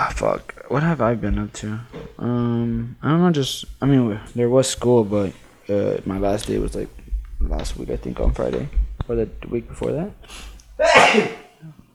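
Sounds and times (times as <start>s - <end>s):
speech: 0.1s - 11.8s
single loud sneeze: 10.3s - 11.6s.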